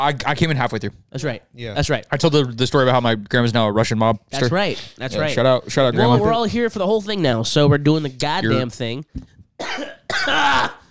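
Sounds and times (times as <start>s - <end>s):
speech: 0.0s - 10.8s
harsh raspy coughs: 9.6s - 10.8s.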